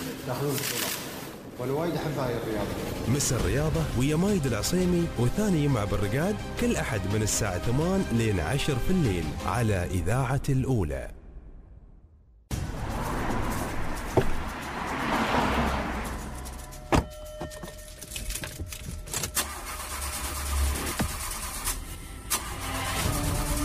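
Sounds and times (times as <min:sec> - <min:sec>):
speech: 0:00.2 - 0:01.0, 0:01.6 - 0:11.2
car engine cranking and failing to start: 0:12.6 - 0:23.6.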